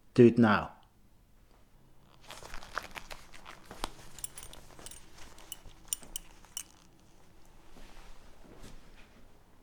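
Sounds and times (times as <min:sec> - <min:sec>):
speech: 0:00.2 - 0:00.8
fabric rustling and tugging: 0:02.0 - 0:09.3
metal belt buckle clinking and jangling being undone: 0:02.1 - 0:07.6.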